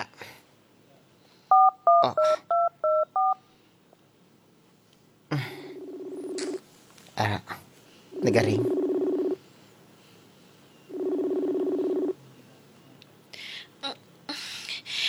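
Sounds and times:
cellphone keypad dialing tones: 1.5 - 3.4, 8.6 - 9.4, 10.9 - 12.2
speech: 7.2 - 7.6, 8.2 - 8.8.

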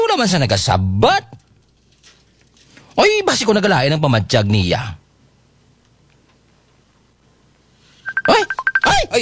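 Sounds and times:
speech: 0.2 - 1.4, 3.0 - 5.0, 8.3 - 9.1
phone messenger-app call ringtone electronic beeps: 8.0 - 9.1.

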